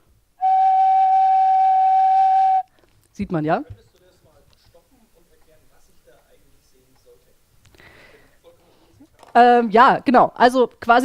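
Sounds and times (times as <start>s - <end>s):
single organ flute pipe sounding a sustained note: 0.4s - 2.7s
speech: 3.2s - 3.9s, 9.4s - 11.0s.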